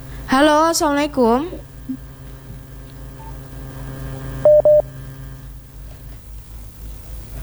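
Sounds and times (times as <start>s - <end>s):
low mains hum: 0.0s - 7.4s
speech: 0.3s - 2.1s
touch-tone dialing beeps to reconnect a dropped phone call: 4.4s - 4.8s.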